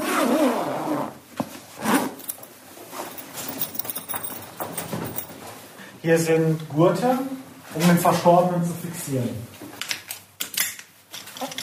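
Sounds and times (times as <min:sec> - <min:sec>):
zipper closing a body bag in a prison basement: 0:00.0 - 0:01.2, 0:01.8 - 0:02.4
soft rubbing and handling noises: 0:01.6 - 0:05.7
speech: 0:06.0 - 0:09.5.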